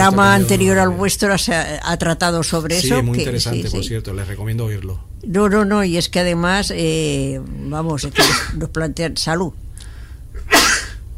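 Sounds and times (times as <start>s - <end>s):
speech: 0.0s - 9.6s
forceful human sneeze: 8.2s - 8.6s, 10.4s - 11.0s.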